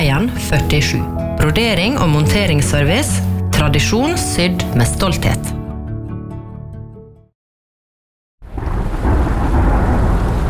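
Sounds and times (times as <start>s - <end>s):
music: 0.0s - 7.4s
speech: 0.1s - 5.5s
deep rumbling thunder: 8.4s - 10.4s
loud steady rain: 8.5s - 10.4s.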